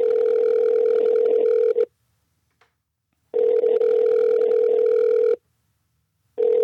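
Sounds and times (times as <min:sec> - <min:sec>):
telephone ringback tone of an unanswered outgoing call: 0:00.0 - 0:01.9, 0:03.4 - 0:05.4, 0:06.4 - 0:06.6.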